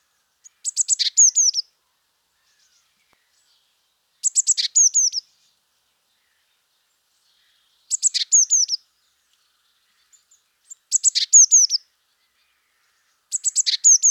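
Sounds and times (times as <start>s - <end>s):
Eurasian blue tit calling: 0.4s - 1.7s, 4.2s - 5.3s, 7.9s - 8.8s, 10.7s - 11.8s, 13.3s - 14.0s.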